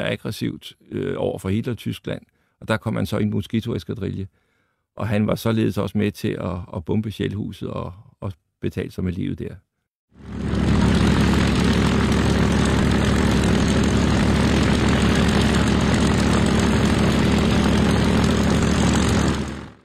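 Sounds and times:
speech: 0.0s - 4.4s, 5.0s - 9.6s
Messerschmitt Bf 109 fighter plane propeller engine roaring: 10.2s - 19.8s.

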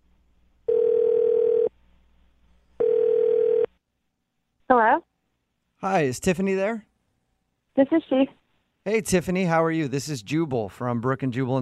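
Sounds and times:
long buzzing telephone ring tones: 0.7s - 1.7s, 2.8s - 3.7s
speech: 5.8s - 6.9s, 7.7s - 11.6s.

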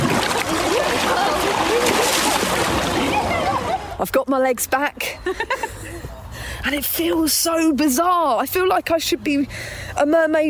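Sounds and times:
person diving and thrashing in a swimming pool: 0.0s - 4.0s
speech: 4.2s - 5.8s, 6.6s - 10.4s.

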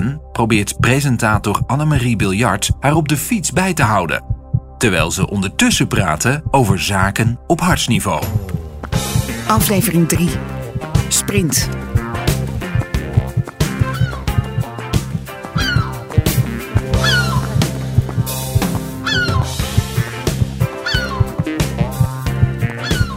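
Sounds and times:
speech: 0.1s - 12.0s
seagulls calling in short yelping cries: 10.8s - 23.1s.

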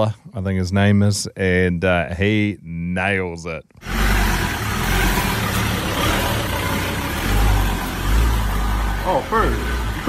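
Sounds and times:
speech: 0.0s - 3.9s, 9.1s - 10.0s
white heavily modified Ford Ranger ute pulling up and driving over a curb: 3.8s - 10.0s.

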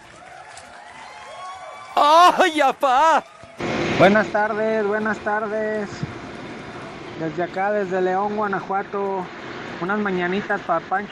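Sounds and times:
small crowd applauding: 0.0s - 3.6s
speech: 2.0s - 6.1s, 7.2s - 11.1s.

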